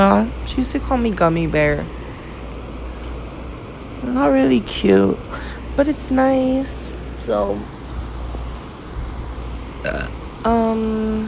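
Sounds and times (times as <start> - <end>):
speech: 0.0 - 2.0, 4.0 - 7.7, 9.8 - 11.2
quiet hum: 0.0 - 11.2
person burping: 9.8 - 10.2.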